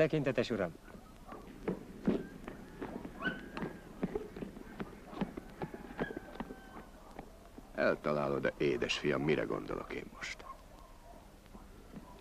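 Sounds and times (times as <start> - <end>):
speech: 0.0 - 1.0, 7.8 - 10.4
horse hooves clip-clopping at a walking pace: 0.8 - 8.4
faint murmurs: 0.8 - 12.1.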